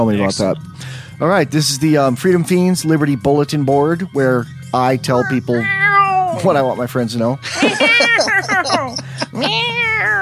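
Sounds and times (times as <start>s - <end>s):
speech: 0.0s - 5.8s, 6.4s - 9.7s
cat meowing: 5.2s - 6.4s, 8.8s - 10.2s
laughter: 7.4s - 9.8s.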